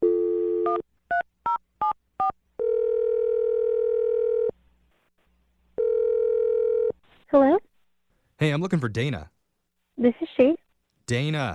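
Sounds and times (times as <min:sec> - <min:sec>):
phone dial tone: 0:00.0 - 0:01.2, 0:02.6 - 0:04.6, 0:05.8 - 0:07.0
speech: 0:08.4 - 0:09.4, 0:10.0 - 0:11.5.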